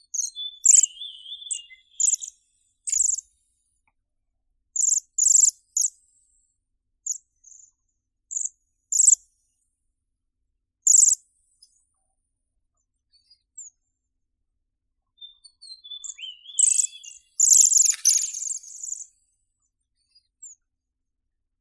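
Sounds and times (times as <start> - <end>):
Bohemian waxwing Bombycilla garrulus calling: 0.4 - 2.0, 15.8 - 19.0.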